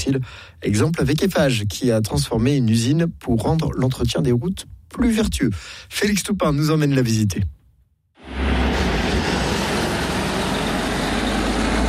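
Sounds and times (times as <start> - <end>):
speech: 0.0 - 7.6
broad road noise of heavy truck: 8.2 - 11.8
heavy truck leaving a road-building factory near Roanne, France: 8.2 - 11.8.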